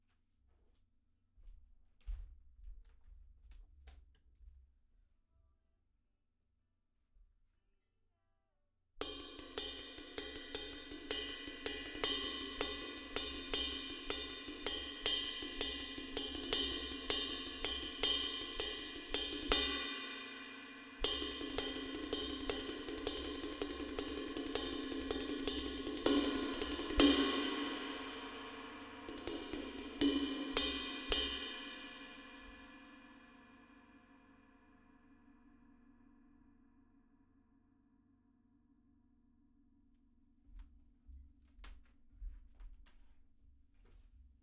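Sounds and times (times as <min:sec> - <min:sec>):
percussion outro cymbals: 0:09.0 - 0:33.3.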